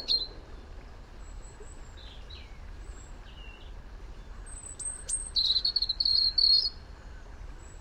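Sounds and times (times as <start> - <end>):
European robin Erithacus rubecula singing: 0.0 - 0.4, 1.2 - 6.8
steady low background noise: 0.0 - 7.8.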